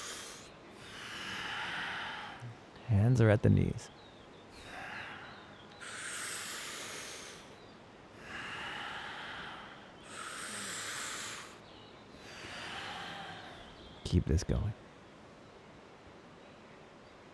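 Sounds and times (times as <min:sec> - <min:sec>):
deep forceful breathing: 0:00.0 - 0:02.6, 0:04.5 - 0:14.0
speech: 0:02.9 - 0:04.0, 0:14.1 - 0:14.9.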